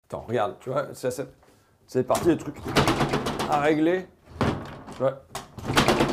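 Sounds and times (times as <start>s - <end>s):
speech: 0.1s - 4.2s, 5.0s - 5.8s
door rattling and sliding: 2.1s - 6.1s.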